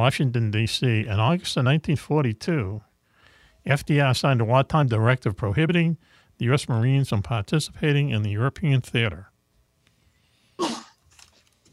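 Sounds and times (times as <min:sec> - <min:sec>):
speech: 0:00.0 - 0:02.9, 0:03.6 - 0:09.3
sneeze: 0:10.6 - 0:11.0.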